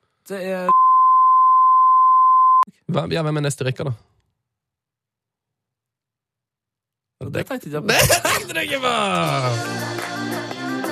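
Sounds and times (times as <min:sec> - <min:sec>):
speech: 0:00.3 - 0:00.9, 0:02.9 - 0:04.1, 0:07.3 - 0:10.3
censor bleep tone: 0:00.7 - 0:02.7.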